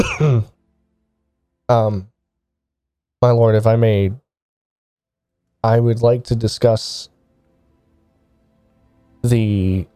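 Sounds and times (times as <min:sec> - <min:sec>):
speech: 0:00.0 - 0:00.5, 0:01.7 - 0:02.1, 0:03.2 - 0:04.2, 0:05.6 - 0:07.1, 0:09.2 - 0:09.9
man clearing his throat in short voiced bursts: 0:00.0 - 0:00.6.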